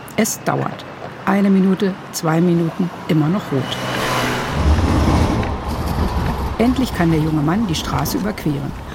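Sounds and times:
speech: 0.2 - 4.0, 6.6 - 8.9
steady stream of cars driving past: 2.7 - 8.9.

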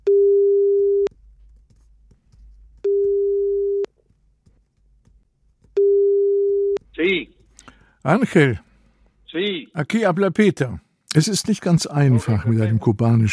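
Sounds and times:
telephone line tone before a call to Cuba: 0.0 - 1.1, 2.9 - 3.9, 5.8 - 6.8
speech: 8.0 - 8.7, 9.3 - 13.3.

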